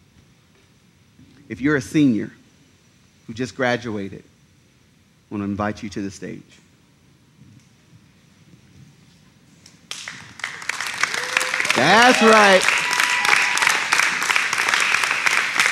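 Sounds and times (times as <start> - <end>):
speech: 1.5 - 2.4, 3.3 - 4.3, 5.3 - 6.6, 11.8 - 12.8
audience applauding: 9.9 - 15.6.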